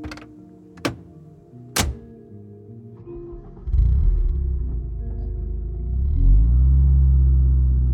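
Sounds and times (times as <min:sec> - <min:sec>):
car doors shutting: 0:00.0 - 0:01.2, 0:01.8 - 0:02.1
car engine starting as the car pulls away down the street: 0:03.4 - 0:07.9.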